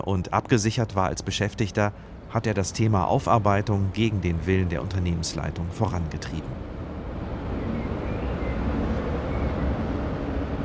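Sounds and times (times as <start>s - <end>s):
speech: 0.0s - 6.8s
train rumbling along railway tracks outdoors in the cold by former Adlerwerke factory grounds: 2.1s - 10.6s.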